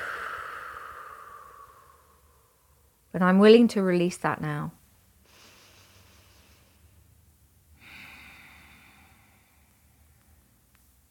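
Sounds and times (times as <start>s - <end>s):
deep breath drawn slowly: 0.0s - 2.8s, 5.2s - 7.1s, 7.8s - 10.6s
speech: 3.1s - 4.8s.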